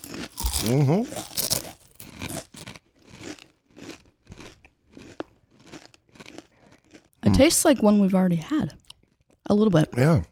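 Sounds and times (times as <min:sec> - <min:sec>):
Doritos tortilla chips crunching during a tasting of international flavors: 0:00.0 - 0:07.1
speech: 0:00.6 - 0:01.3, 0:07.4 - 0:08.8, 0:09.5 - 0:10.3.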